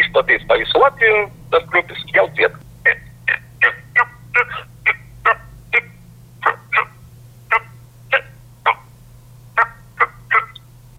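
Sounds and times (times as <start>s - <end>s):
steady low hum: 0.0s - 10.9s
speech: 0.2s - 2.6s
common toad calling in short rasping croaks in Latvia: 2.8s - 8.9s, 9.6s - 10.6s.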